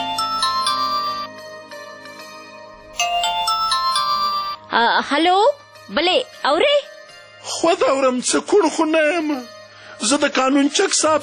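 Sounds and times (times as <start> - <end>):
phone ringtone of an incoming listener call, electronic melody of chiming notes: 0.0 - 5.0
speech: 4.7 - 11.2.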